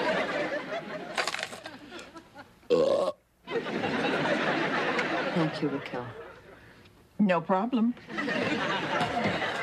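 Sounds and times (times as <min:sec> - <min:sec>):
laughter: 0:00.0 - 0:02.6, 0:03.5 - 0:06.6, 0:08.0 - 0:09.6
loud drawn-out human belch: 0:02.7 - 0:03.2
speech: 0:05.5 - 0:06.2, 0:07.2 - 0:09.5.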